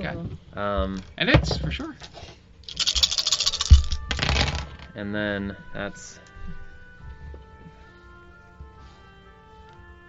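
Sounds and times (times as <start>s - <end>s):
speech: 0.0s - 2.9s, 5.0s - 6.6s
dice rolling across a hard tabletop for damage in a game: 2.7s - 4.9s.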